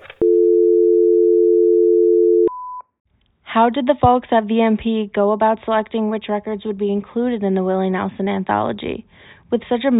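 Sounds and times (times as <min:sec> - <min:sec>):
loud steady telephone line tone: 0:00.0 - 0:02.8
speech: 0:03.6 - 0:09.9.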